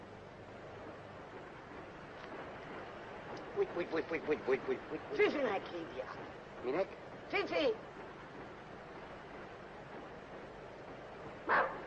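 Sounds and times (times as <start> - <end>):
steady low hiss: 0.0 - 11.8
speech: 3.6 - 8.1
puppy barking: 11.5 - 11.8.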